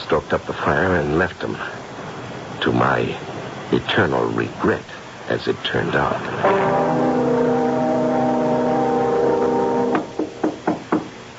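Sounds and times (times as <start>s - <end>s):
speech: 0.1s - 1.8s, 2.6s - 7.2s
steady low humming drone: 6.4s - 10.5s
sharp knocks on a door: 10.0s - 11.1s.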